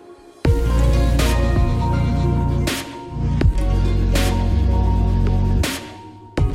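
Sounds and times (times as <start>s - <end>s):
instrumental podcast theme music: 0.0s - 6.5s
heavy sustained bass: 0.5s - 5.6s.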